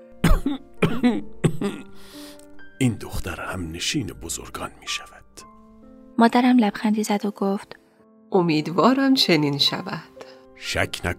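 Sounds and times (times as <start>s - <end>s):
throaty coughs to catch someone's attention: 0.2s - 2.0s
speech: 0.4s - 1.8s, 2.8s - 5.2s, 6.2s - 11.1s.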